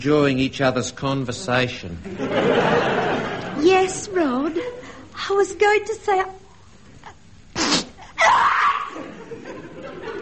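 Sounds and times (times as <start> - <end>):
speech: 0.0 - 4.6, 5.3 - 6.4
laughter: 2.0 - 5.0, 8.9 - 10.2
sneeze: 7.5 - 9.0.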